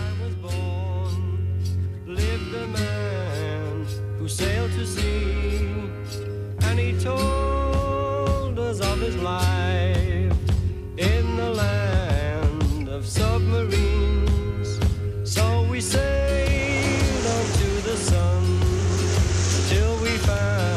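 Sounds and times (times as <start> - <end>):
song with singing and band accompaniment: 0.0 - 20.7
rushing, sloshing water sound effect: 16.2 - 20.7.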